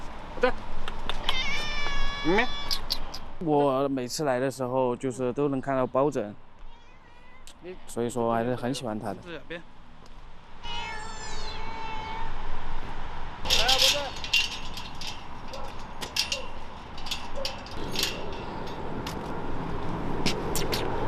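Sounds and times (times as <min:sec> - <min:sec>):
steady noise: 0:00.0 - 0:21.0
speech: 0:00.4 - 0:00.8, 0:02.2 - 0:02.8, 0:03.4 - 0:06.4, 0:07.6 - 0:09.7
ragdoll cat meowing: 0:01.2 - 0:02.8, 0:06.6 - 0:07.6, 0:10.6 - 0:12.4
light rattling: 0:13.4 - 0:20.8.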